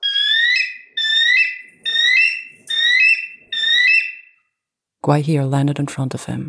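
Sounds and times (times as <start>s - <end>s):
eagle screaming: 0.0s - 4.3s
speech: 5.0s - 6.4s.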